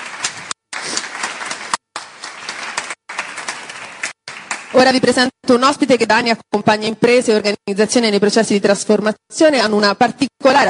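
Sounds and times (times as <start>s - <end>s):
audience applauding to welcome a guest speaker: 0.0s - 4.9s
speech: 4.8s - 10.6s.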